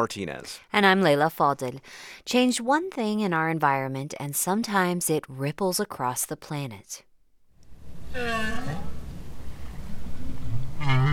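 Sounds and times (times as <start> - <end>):
speech: 0.0 - 7.1, 8.1 - 9.0
steady low underwater rumble: 7.7 - 11.1
North Atlantic right whale moaning call: 8.0 - 9.3, 10.0 - 11.1.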